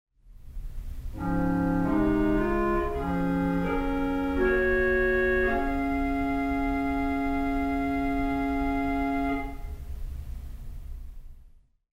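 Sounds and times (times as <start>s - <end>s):
clarinet: 1.2s - 9.8s
theatre organ: 1.2s - 9.8s.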